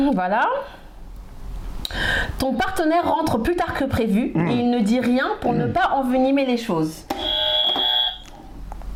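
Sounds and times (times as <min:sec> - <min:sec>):
speech: 0:00.1 - 0:00.8, 0:01.9 - 0:07.1
loud electronic quiz buzzer: 0:07.1 - 0:08.3.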